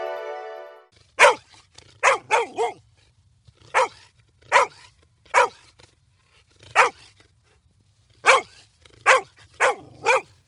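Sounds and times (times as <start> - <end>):
dog barking: 1.2 - 1.4, 2.0 - 2.8, 3.7 - 5.6, 6.7 - 7.1, 8.3 - 10.3.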